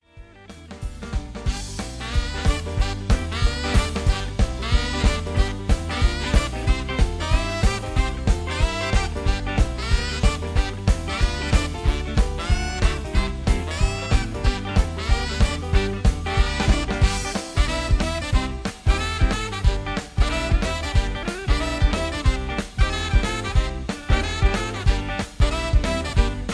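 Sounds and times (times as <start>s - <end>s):
karaoke backing track in key of G: 0.5s - 26.5s.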